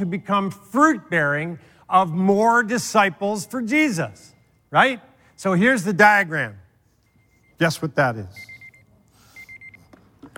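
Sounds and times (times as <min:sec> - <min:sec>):
speech: 0:00.0 - 0:06.6, 0:07.6 - 0:08.5
timer alarm beeping to signal a speaker's time is up: 0:04.2 - 0:09.9.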